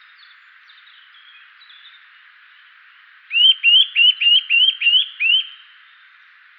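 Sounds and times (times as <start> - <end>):
Eurasian nuthatch Sitta europaea giving clear rising whistled calls: 3.3 - 5.7.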